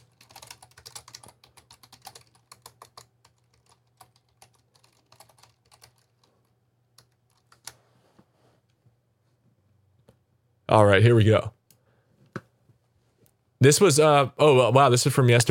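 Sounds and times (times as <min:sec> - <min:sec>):
person typing a search on a computer keyboard: 0:00.0 - 0:07.8
speech: 0:10.7 - 0:11.6, 0:13.6 - 0:15.5.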